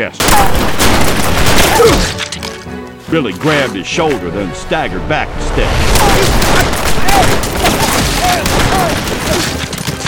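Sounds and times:
speech: 0.0 - 2.5, 3.1 - 7.5
dense gunfire fusillade from a Western shootout: 0.2 - 2.2, 5.9 - 10.0.

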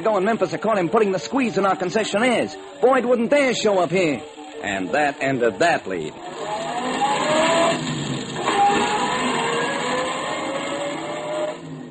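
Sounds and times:
speech: 0.0 - 6.6
car engine drone with faint whine driving away: 6.2 - 11.8.

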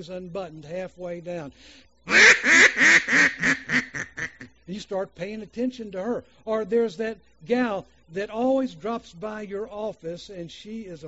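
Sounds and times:
speech: 0.0 - 3.9, 4.7 - 11.0
duck quacking: 2.1 - 4.5.

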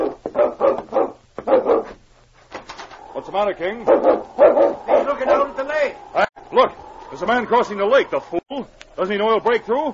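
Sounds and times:
dog barking: 0.0 - 2.0, 3.8 - 5.5
speech: 3.2 - 9.9.

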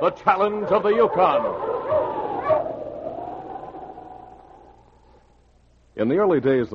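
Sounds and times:
speech: 0.0 - 1.7, 6.0 - 6.7
dog barking: 0.4 - 2.7.

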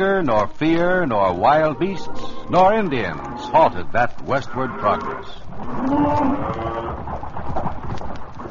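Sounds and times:
speech: 0.0 - 6.6
cattle hooves shuffling: 0.0 - 8.4
cow mooing: 1.3 - 7.0.

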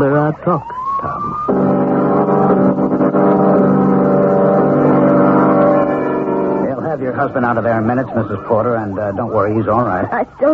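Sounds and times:
speech: 0.0 - 1.6, 7.2 - 10.5
car engine revving: 1.4 - 8.5.

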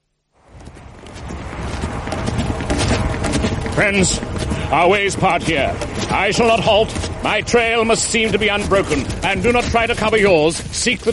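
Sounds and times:
horses' hooves clip-clopping as riders travel together: 0.4 - 11.1
speech: 3.8 - 11.1.

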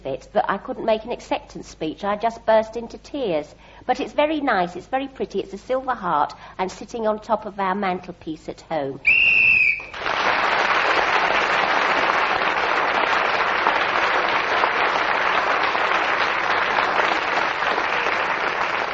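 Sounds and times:
speech: 0.0 - 9.3
shrill whistle blast ending the round: 9.0 - 10.0
large audience applauding: 9.6 - 18.9.

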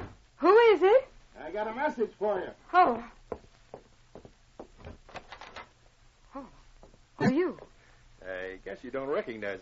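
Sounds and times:
speech: 0.7 - 3.2, 6.4 - 6.6, 7.2 - 9.5
knocking on a wooden cabin door: 3.3 - 5.0.

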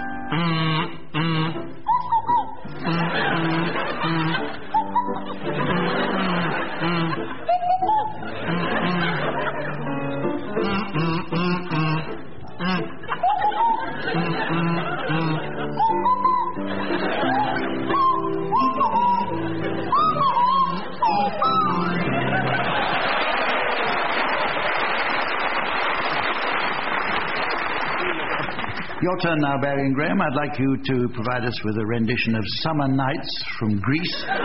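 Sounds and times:
buzzy kazoo playing a tune: 0.2 - 9.9, 10.5 - 22.5
audience laughter and chuckles: 2.6 - 29.1, 33.9 - 34.4
speech: 29.1 - 34.4.

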